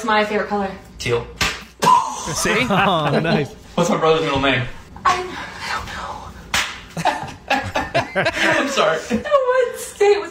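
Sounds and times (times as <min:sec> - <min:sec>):
speech: 0:00.0 - 0:01.4, 0:02.3 - 0:05.6, 0:08.2 - 0:10.2
tortilla slapping against a person: 0:01.4 - 0:01.7, 0:06.5 - 0:07.0
laughter: 0:02.3 - 0:03.6, 0:07.0 - 0:09.4.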